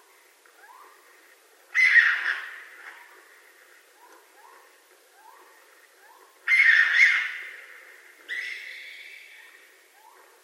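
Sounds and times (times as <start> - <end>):
raccoon uttering a raspy screech: 1.8 - 2.6, 6.5 - 7.5.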